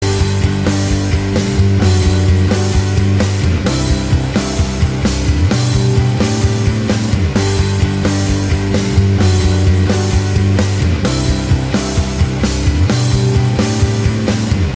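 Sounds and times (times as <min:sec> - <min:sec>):
guitar rocking: 0:00.0 - 0:14.7.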